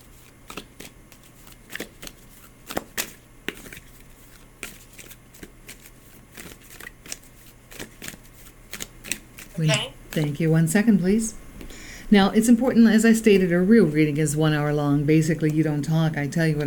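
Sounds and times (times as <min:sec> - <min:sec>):
deck of cards being shuffled for a card reading: 0:00.2 - 0:10.4
low steady hum: 0:09.4 - 0:16.6
speech: 0:09.6 - 0:11.4, 0:12.1 - 0:16.6.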